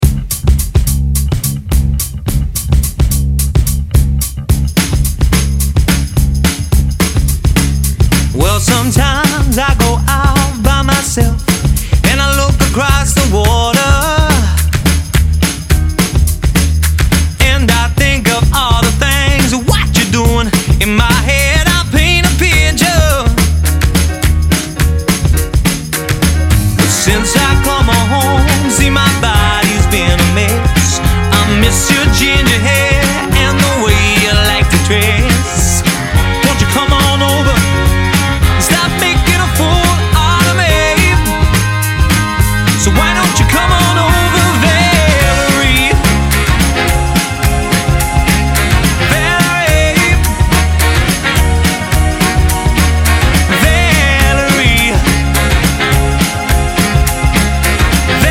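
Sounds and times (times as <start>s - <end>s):
rock pop function band playing: 0.0s - 58.2s.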